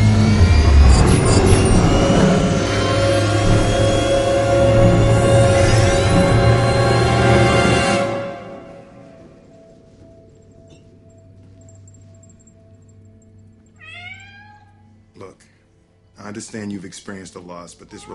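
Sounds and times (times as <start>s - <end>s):
loud rushing burst: 0.0s - 8.4s
steady low hum: 0.0s - 13.8s
cat meowing: 13.8s - 15.0s, 17.8s - 18.1s
speech: 16.5s - 18.1s.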